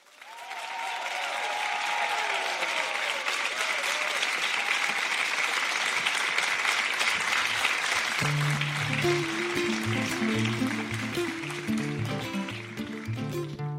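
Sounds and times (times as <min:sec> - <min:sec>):
audience applause at a stage performance: 0:00.0 - 0:13.6
faint cheers or whistles: 0:00.2 - 0:05.2.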